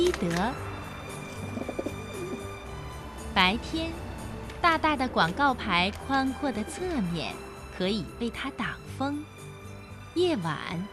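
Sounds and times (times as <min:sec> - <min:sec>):
speech: 0:00.1 - 0:00.7, 0:03.4 - 0:04.0, 0:04.6 - 0:09.4, 0:10.2 - 0:10.9
grey pigeon cooing on a rooftop billboard: 0:01.4 - 0:02.5.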